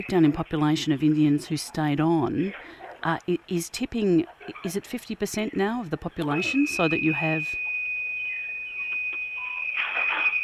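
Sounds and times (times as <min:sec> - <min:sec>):
speech: 0:00.0 - 0:07.7
UPS units in an office sounding a shrill electronic alarm after power failure: 0:05.4 - 0:10.4.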